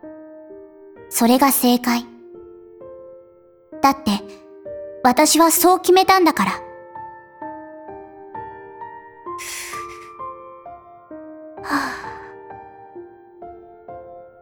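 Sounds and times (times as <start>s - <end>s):
speech: 1.1s - 2.1s, 3.8s - 4.4s, 5.0s - 6.7s
one big deep breath in airy rushes: 9.4s - 10.2s, 11.6s - 12.4s.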